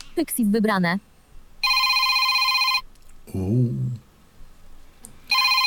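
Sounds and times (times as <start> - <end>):
speech: 0.2 - 1.1
mobile phone ringtone with a bright electronic melody: 1.6 - 2.8, 5.3 - 5.6.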